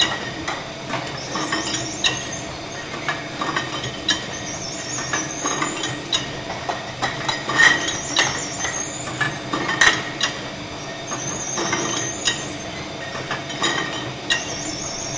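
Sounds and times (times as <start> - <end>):
bottling machine: 0.0 - 15.1.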